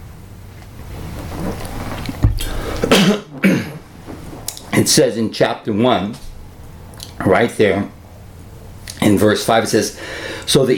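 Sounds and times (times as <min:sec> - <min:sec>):
faint room noise: 0:00.0 - 0:10.7
person clearing throat: 0:02.5 - 0:03.8
speech: 0:04.8 - 0:06.3, 0:07.2 - 0:08.0, 0:09.0 - 0:10.7.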